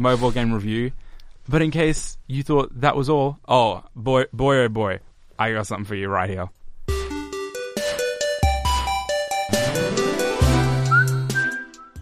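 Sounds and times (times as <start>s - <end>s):
speech: 0.0s - 6.6s
bouncy backing music with bass notes and percussive hits: 6.9s - 12.0s
whistled melody from mobile game soundtrack: 9.7s - 12.0s.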